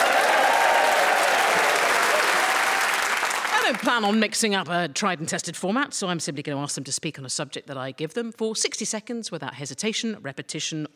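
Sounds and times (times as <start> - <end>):
large audience cheering and whooping: 0.0 - 3.6
large audience applause: 0.0 - 4.1
speech: 3.8 - 10.9.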